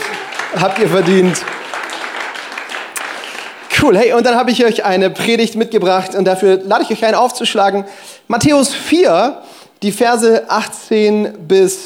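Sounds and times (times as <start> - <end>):
crowd applauding with many hands clapping: 0.0 - 4.2
speech: 0.5 - 1.6, 3.8 - 11.8.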